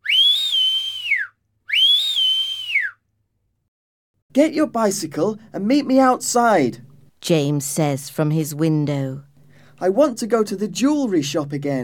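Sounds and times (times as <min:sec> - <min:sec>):
person whistling: 0:00.0 - 0:03.0
speech: 0:04.4 - 0:11.8.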